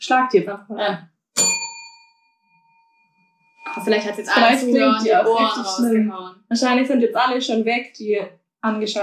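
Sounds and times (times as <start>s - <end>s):
speech: 0.1s - 1.6s, 3.6s - 9.0s
desk bell ringing: 1.4s - 4.6s.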